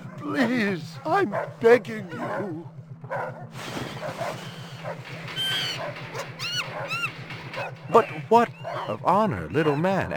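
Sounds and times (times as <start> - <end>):
speech: 0.2 - 10.1
tiger giving a low rumbling pulsing growl: 1.0 - 10.1
high whining yelps: 4.1 - 10.1
squeaky rising chirps: 4.4 - 10.1.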